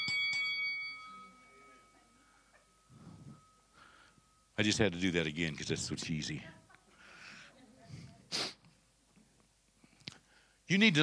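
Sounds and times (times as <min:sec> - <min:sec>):
bell struck and ringing: 0:00.0 - 0:06.0
speech: 0:04.6 - 0:06.6, 0:10.7 - 0:11.0.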